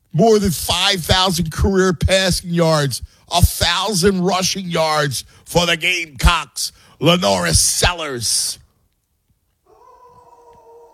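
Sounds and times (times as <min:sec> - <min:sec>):
speech: 0:00.2 - 0:08.6
dog howling: 0:09.7 - 0:10.9.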